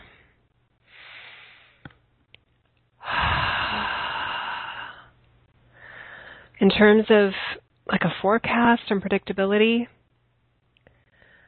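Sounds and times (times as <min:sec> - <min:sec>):
deep breath inhale during a guided relaxation: 0:00.0 - 0:01.9, 0:03.0 - 0:05.1, 0:05.8 - 0:06.5
whooshing exhale during a guided relaxation: 0:00.9 - 0:01.8, 0:03.0 - 0:05.1
speech: 0:06.6 - 0:10.0.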